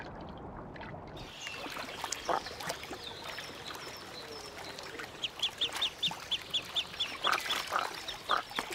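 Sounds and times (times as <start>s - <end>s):
soft splashing and lapping water: 0.0s - 8.7s
young goosander ducklings peeping on water: 2.0s - 3.8s, 4.5s - 8.6s.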